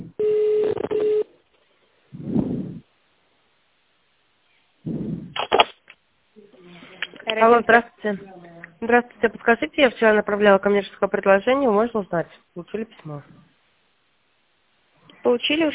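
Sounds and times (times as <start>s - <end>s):
telephone line tones while a call waits to connect: 0.2s - 1.3s
speech: 7.4s - 13.4s, 15.3s - 15.7s.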